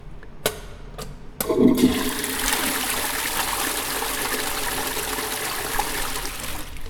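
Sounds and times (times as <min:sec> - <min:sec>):
toilet flushing: 0:01.4 - 0:06.8.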